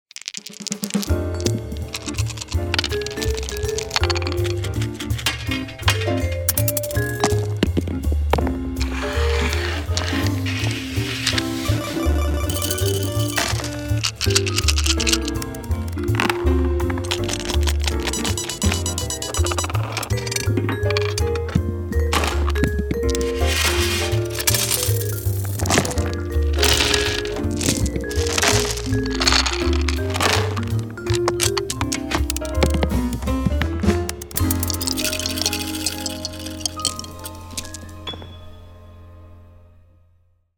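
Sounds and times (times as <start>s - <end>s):
dice at a party: 0.1s - 7.8s, 8.8s - 38.2s.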